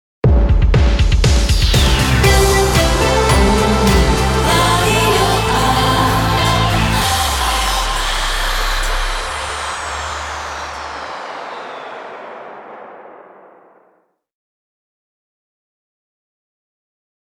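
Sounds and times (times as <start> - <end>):
fast dance music transitioning to soft medium music: 1.2 - 13.9.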